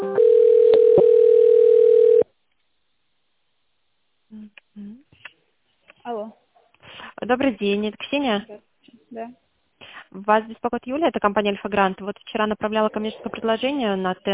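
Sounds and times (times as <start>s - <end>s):
electronic telephone tones while an office call is being transferred: 0.2s - 2.2s
speech: 7.3s - 9.4s, 10.2s - 14.3s.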